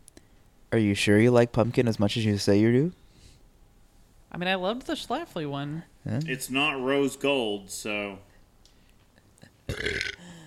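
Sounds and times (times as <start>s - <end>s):
speech: 0.7s - 3.0s, 4.4s - 8.3s
loud raspy burp: 9.7s - 10.3s.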